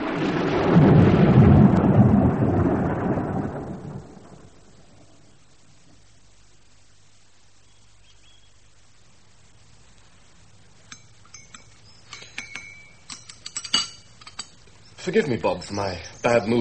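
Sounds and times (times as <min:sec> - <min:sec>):
rolling thunder in a thunderstorm: 0:00.0 - 0:05.3
speech: 0:00.2 - 0:00.8, 0:15.1 - 0:16.5
light clinks and taps: 0:10.8 - 0:14.8.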